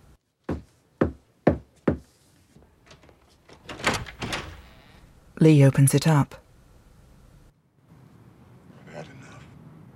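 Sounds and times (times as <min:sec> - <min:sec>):
firm knocking on an apartment door: 0:00.5 - 0:02.0
speech: 0:05.4 - 0:06.4.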